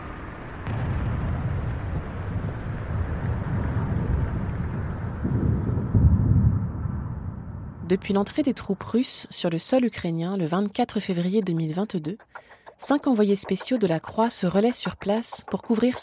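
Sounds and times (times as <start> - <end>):
deep rumbling booms: 0.6 - 7.8
speech: 7.9 - 16.0.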